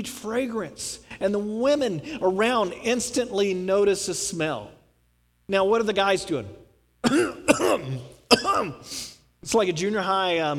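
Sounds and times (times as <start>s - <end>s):
speech: 0.0s - 4.8s, 5.5s - 10.5s
men fake coughing: 7.0s - 8.9s.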